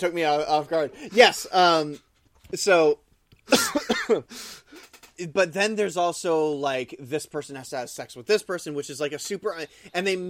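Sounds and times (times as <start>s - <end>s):
speech: 0.0s - 10.2s
person coughing: 3.5s - 4.3s.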